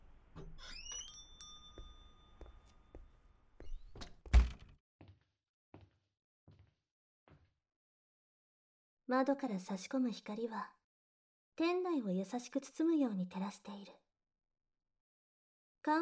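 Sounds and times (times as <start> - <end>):
shop door bell chime of a book café: 0.9 - 2.8
soft footsteps: 1.7 - 7.5
book café door shutting with a heavy thunk: 4.0 - 4.7
speech: 9.1 - 10.8, 11.6 - 14.0.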